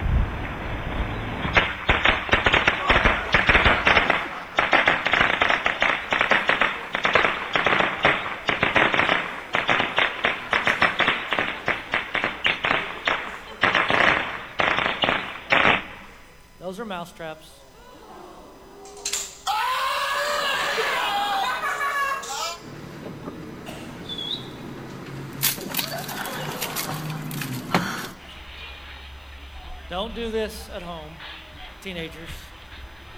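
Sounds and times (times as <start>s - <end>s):
fireworks firecracker pops and crackles: 0.0s - 16.5s, 25.3s - 29.1s
laughter: 2.7s - 4.7s, 12.8s - 14.1s, 19.9s - 24.0s, 25.5s - 28.2s
speech: 17.0s - 17.6s, 30.2s - 31.1s, 31.8s - 32.4s.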